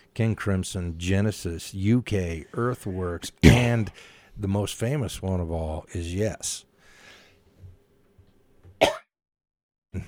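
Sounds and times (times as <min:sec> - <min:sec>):
speech: 0:00.2 - 0:06.7
person coughing: 0:03.4 - 0:04.0, 0:08.8 - 0:09.1
faint breathing: 0:03.9 - 0:04.4, 0:06.8 - 0:07.6.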